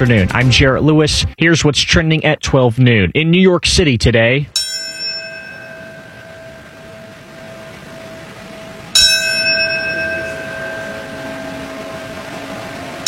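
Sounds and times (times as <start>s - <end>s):
speech: 0.0s - 4.6s
ceremonial bell ringing at the 9/11 Memorial and Museum in New York City: 4.6s - 13.0s.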